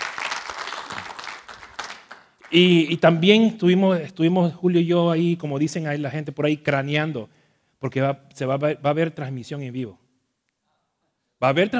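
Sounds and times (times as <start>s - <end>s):
church congregation applauding at a women's retreat: 0.0s - 2.9s
speech: 2.5s - 10.0s, 11.4s - 11.7s.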